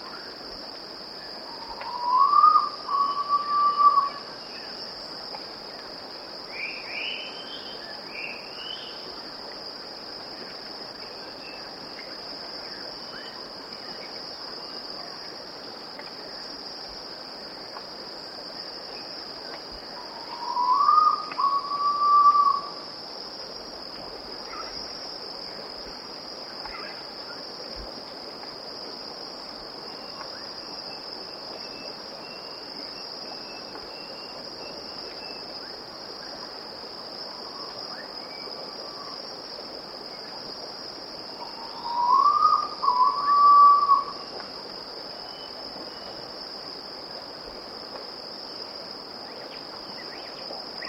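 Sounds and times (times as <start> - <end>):
Erythropitta erythrogaster bird calling: 1.6 - 4.2, 20.2 - 22.7, 41.6 - 44.1.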